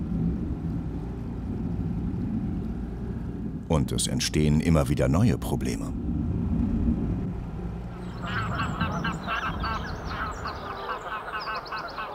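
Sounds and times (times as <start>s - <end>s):
steady low rumble of wind or water: 0.0s - 12.1s
speech: 3.7s - 6.0s
flock of geese honking on a lake: 7.9s - 12.1s.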